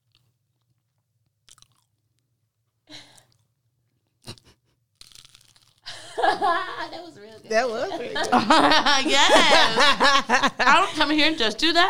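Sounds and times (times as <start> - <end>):
crunching as someone eats crunchy food: 0.0 - 2.4, 4.2 - 5.9
voices talking and chuckling loudly: 5.9 - 11.8
speech: 6.3 - 11.8.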